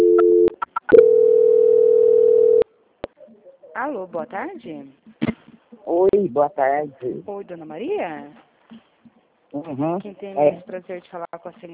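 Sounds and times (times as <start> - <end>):
telephone tone while a call is being transferred: 0.0 - 2.6
speech: 3.8 - 5.2, 5.9 - 8.4, 9.5 - 11.7.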